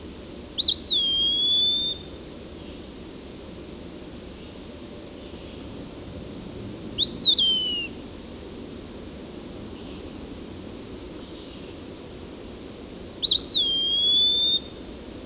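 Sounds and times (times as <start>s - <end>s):
Eastern wood-pewee singing: 0.6s - 2.9s, 7.0s - 8.0s, 11.2s - 11.8s, 13.2s - 14.8s.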